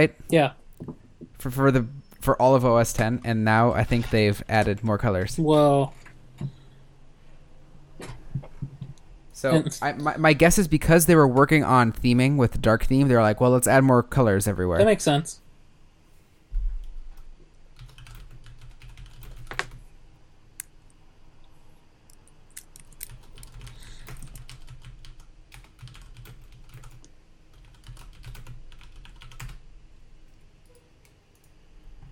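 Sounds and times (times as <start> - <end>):
speech: 0.0 - 6.6, 9.4 - 15.4
low hum: 0.0 - 32.1
typing on a computer keyboard: 17.8 - 19.8, 23.0 - 29.6.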